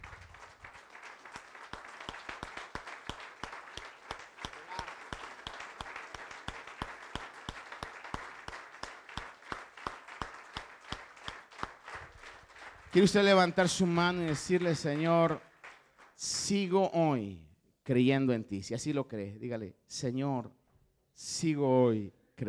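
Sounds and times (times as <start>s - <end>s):
audience clapping during a sermon: 0.0s - 16.2s
speech: 13.0s - 15.5s, 16.2s - 20.6s, 21.2s - 22.4s.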